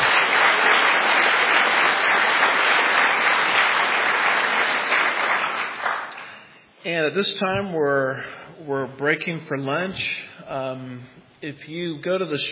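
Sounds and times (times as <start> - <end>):
audience applause: 0.0 - 6.2
speech: 6.8 - 12.5.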